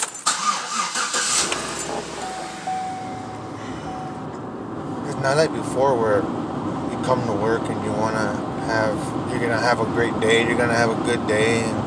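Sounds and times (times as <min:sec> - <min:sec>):
car engine cranking, starting and idling: 0:00.0 - 0:11.8
speech: 0:05.2 - 0:06.5, 0:07.1 - 0:11.8.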